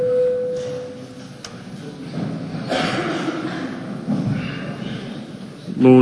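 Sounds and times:
electronic parliament voting bell tone before a vote on a bill: 0:00.0 - 0:01.0
murmur: 0:00.0 - 0:06.0.

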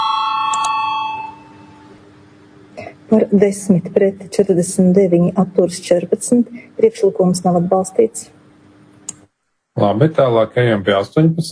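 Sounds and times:
electric voting bell ringing in a parliament chamber: 0:00.0 - 0:01.9
speech: 0:03.1 - 0:08.4, 0:09.8 - 0:11.4.

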